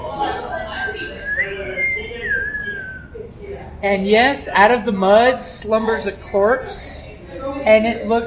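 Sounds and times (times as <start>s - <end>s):
low murmuring voice: 0.0s - 3.8s
thin wavering whistle with sliding pitch: 0.7s - 3.2s
speech: 3.8s - 8.2s.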